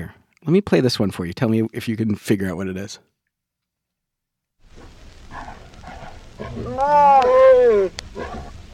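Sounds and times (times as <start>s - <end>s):
speech: 0.0s - 3.1s, 6.4s - 8.3s
tigers growling while mating: 4.7s - 8.7s.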